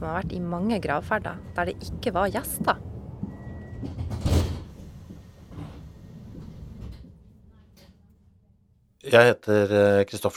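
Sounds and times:
speech: 0.0 - 2.9, 9.1 - 10.3
moving train carriage interior rumbling: 0.0 - 8.8
train sliding door whooshing and thudding: 2.8 - 7.3.

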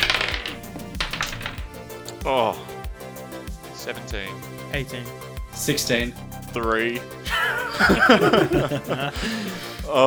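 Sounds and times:
twenty-sided dice clattering across a hard surface during a tabletop game: 0.0 - 1.7
speech: 2.2 - 2.7, 3.8 - 10.0
laughter: 7.3 - 9.8.

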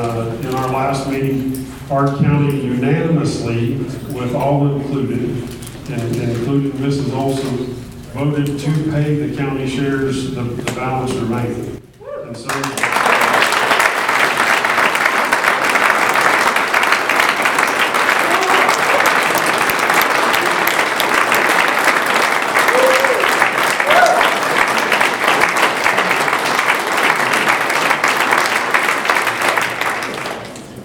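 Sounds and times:
speech: 0.1 - 12.9
crowd applauding at a county party meeting: 12.4 - 30.8.

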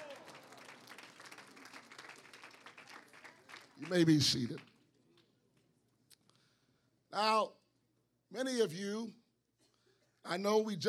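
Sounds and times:
church audience clapping hands: 0.0 - 5.6
speech: 3.8 - 4.7, 7.2 - 7.6, 8.3 - 9.2, 10.3 - 10.8.

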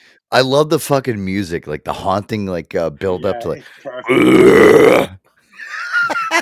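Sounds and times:
speech: 0.3 - 5.2
loud drawn-out belching: 4.0 - 5.2.

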